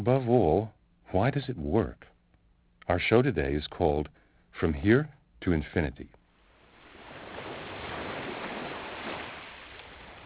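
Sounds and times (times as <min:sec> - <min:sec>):
speech: 0:00.0 - 0:02.1, 0:02.9 - 0:06.2
ocean waves breaking on a beach: 0:06.6 - 0:10.2.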